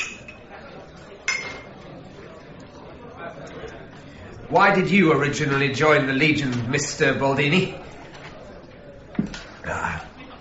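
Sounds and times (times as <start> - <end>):
glasses clinking during a wine toast: 0.0 - 0.5, 1.3 - 1.8
low steady murmur of voices: 0.0 - 10.3
speech: 4.5 - 7.8.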